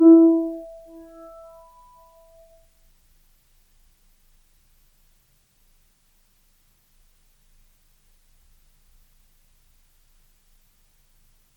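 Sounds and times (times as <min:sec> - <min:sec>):
Kawai grand piano E3 note sustained: 0:00.0 - 0:01.4.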